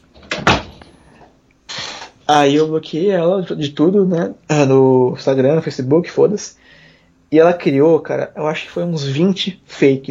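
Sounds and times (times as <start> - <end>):
door thumping shut: 0.2 - 0.8
speech: 2.3 - 10.0.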